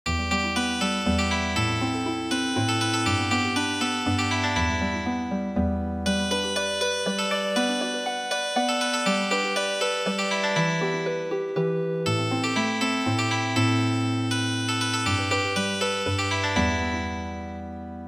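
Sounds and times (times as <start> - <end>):
harp music: 0.1 - 18.0.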